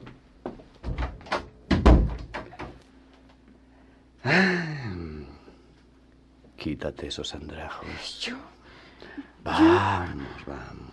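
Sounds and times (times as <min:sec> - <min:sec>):
door swung shut with a heavy low thud: 0:00.9 - 0:02.7
speech: 0:04.2 - 0:04.8, 0:06.8 - 0:10.8.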